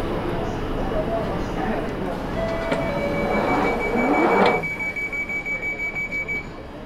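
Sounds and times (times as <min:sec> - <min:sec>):
London Underground tube train rumbling: 0:00.0 - 0:05.0
tube train clattering as it slows to stop at a platform in London: 0:02.0 - 0:06.4
whining, squealing tones from tube train wheels and motors: 0:02.1 - 0:05.0.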